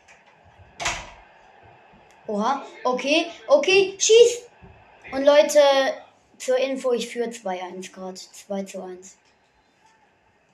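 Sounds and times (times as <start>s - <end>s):
door shutting with a thud: 0.8s - 1.3s
speech: 2.3s - 4.5s, 5.1s - 9.2s.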